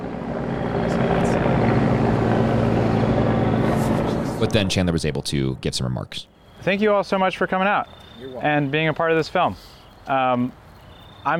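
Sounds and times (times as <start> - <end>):
helicopter passing overhead with rotor drone: 0.0 - 6.2
speech: 4.4 - 10.6.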